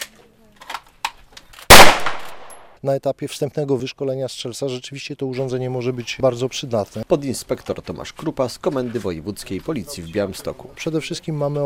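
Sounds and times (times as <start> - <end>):
gunshot at a police shooting range: 1.7 - 2.7
speech: 2.8 - 11.6.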